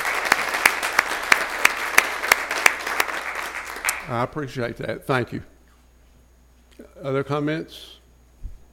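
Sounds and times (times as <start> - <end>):
audience round of applause: 0.0 - 4.2
speech: 4.1 - 5.6, 7.0 - 8.0.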